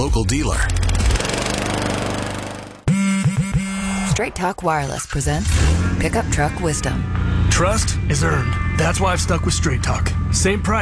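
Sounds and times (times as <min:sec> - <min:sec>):
speech: 0:00.0 - 0:00.9, 0:04.2 - 0:10.8
Gravely lawn mower engine running: 0:00.6 - 0:02.9.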